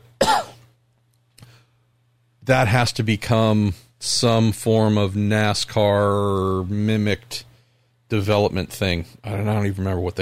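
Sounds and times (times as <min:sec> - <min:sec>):
faint steady low hum: 0:00.0 - 0:10.2
person coughing harshly: 0:00.2 - 0:00.6
speech: 0:02.4 - 0:07.5, 0:08.1 - 0:10.2.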